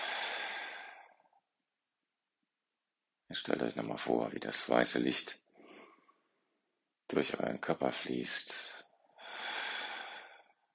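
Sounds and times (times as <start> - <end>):
deep breathing during a guided meditation: 0.0 - 1.1, 5.6 - 6.2, 9.2 - 10.6
speech: 3.3 - 5.4, 7.1 - 8.8.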